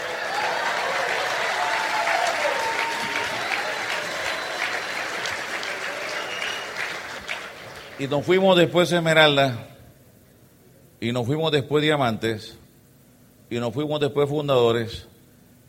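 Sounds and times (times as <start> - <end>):
faint whistle or cheer: 0.0 - 7.8
sustained audience applause: 0.0 - 8.2
speech: 8.0 - 9.7, 11.0 - 12.6, 13.5 - 15.1.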